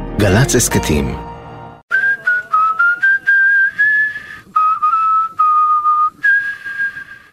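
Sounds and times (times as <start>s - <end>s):
speech: 0.2s - 1.3s
person whistling a melodic tune: 1.9s - 7.2s.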